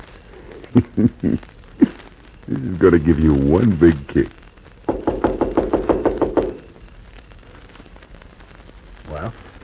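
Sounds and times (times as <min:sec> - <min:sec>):
speech: 0:00.7 - 0:01.6, 0:02.6 - 0:04.4
knocking on a wooden door: 0:04.9 - 0:06.6.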